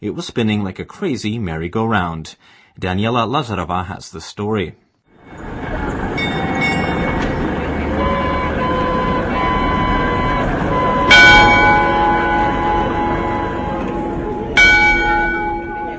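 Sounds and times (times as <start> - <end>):
speech: 0.0 - 5.5
noise from crowds of tourists: 5.2 - 15.9
astronomical clock bell on Prague's Old Town Square chiming the hour: 5.3 - 15.9.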